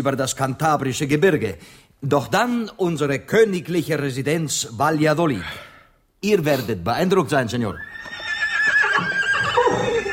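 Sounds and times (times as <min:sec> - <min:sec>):
speech: 0:00.0 - 0:08.0
horses neighing in a long shrill whinny: 0:07.8 - 0:10.1.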